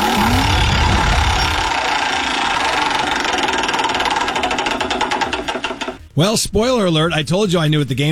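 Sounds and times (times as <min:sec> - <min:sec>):
prize wheel spinning during a game: 0:00.0 - 0:06.0
speech: 0:06.2 - 0:08.0.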